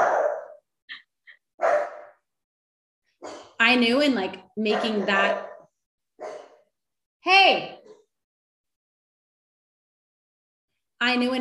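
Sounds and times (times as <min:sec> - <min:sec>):
dog barking: 0:00.0 - 0:00.6, 0:01.6 - 0:02.2, 0:03.2 - 0:03.5, 0:04.6 - 0:06.7
speech: 0:03.7 - 0:05.5, 0:07.2 - 0:07.8, 0:11.0 - 0:11.3.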